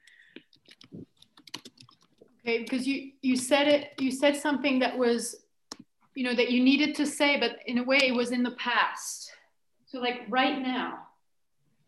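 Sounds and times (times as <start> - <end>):
rapid typing on a computer keyboard: 0.0 - 2.8
speech: 2.5 - 5.4, 6.2 - 11.0.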